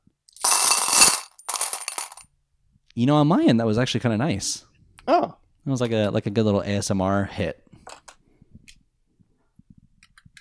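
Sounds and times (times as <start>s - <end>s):
coins dropping into a bowl: 0.3s - 2.2s
speech: 3.0s - 7.6s.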